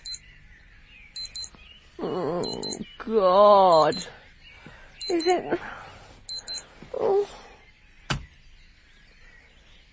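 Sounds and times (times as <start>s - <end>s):
alarm clock high-pitched electronic beeps: 0.0s - 0.3s, 1.1s - 1.6s, 2.3s - 2.9s, 3.7s - 4.1s, 5.0s - 5.5s, 6.2s - 6.7s
speech: 2.0s - 4.2s, 5.1s - 5.8s.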